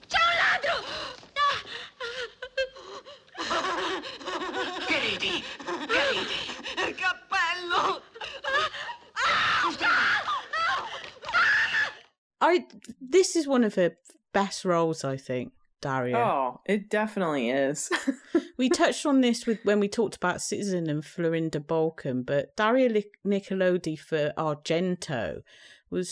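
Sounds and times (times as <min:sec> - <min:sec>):
woman manically half laughing, half screaming: 0:00.2 - 0:12.1
speech: 0:12.5 - 0:26.0.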